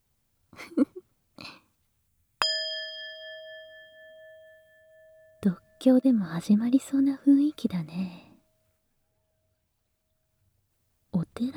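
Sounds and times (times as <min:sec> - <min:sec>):
metal singing bowl struck: 0:02.4 - 0:05.5
speech: 0:05.4 - 0:08.2, 0:11.4 - 0:11.5.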